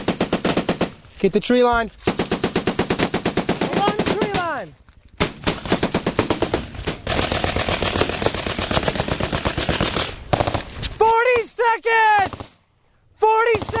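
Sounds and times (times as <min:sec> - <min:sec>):
rapid machine gun fire in combat: 0:00.0 - 0:01.0, 0:02.0 - 0:04.6, 0:05.2 - 0:10.7
speech: 0:01.2 - 0:02.0
man shouting: 0:03.7 - 0:04.7, 0:11.0 - 0:12.4, 0:13.2 - 0:13.7.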